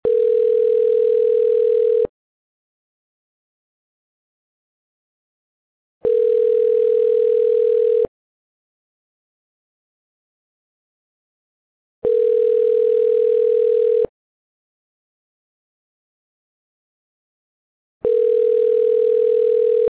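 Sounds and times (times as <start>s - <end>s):
phone ringback tone: 0.0s - 2.1s, 6.0s - 8.1s, 12.0s - 14.1s, 18.0s - 19.8s.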